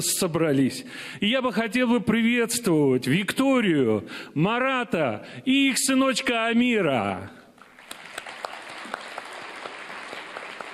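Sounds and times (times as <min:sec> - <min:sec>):
speech: 0:00.0 - 0:07.4
room full of people applauding: 0:07.7 - 0:10.7.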